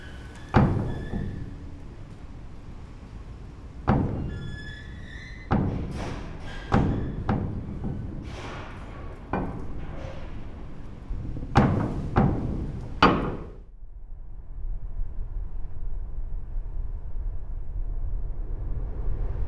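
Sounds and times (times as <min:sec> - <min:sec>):
metal door banging and rattling in gusts of wind: 0:00.0 - 0:13.7
steady low wind rumble: 0:00.0 - 0:19.4.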